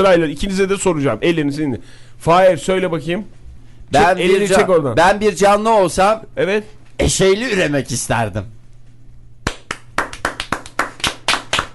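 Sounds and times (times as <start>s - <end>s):
speech: 0.0s - 8.6s
applause for a child's answer during a morning TV show: 9.4s - 11.7s.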